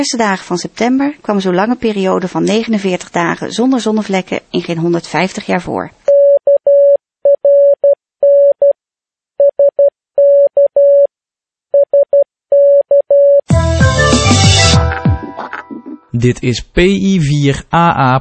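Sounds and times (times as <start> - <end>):
speech: 0.0 - 6.0, 16.2 - 18.1
Morse code beeps in a single pitch: 6.1 - 8.7, 9.4 - 11.1, 11.8 - 13.5
loud burst of broadband music: 13.5 - 16.0.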